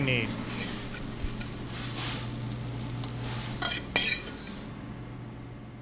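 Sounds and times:
speech: 0.0s - 0.5s
mushrooms frying in sizzling butter in a hot pan: 0.0s - 5.2s
utensil stirring and scraping mushrooms against the pan: 0.4s - 2.4s, 3.0s - 4.7s.

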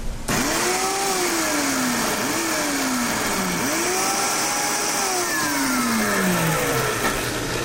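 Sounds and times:
blender pureeing seeded ingredients with water: 0.3s - 7.6s.

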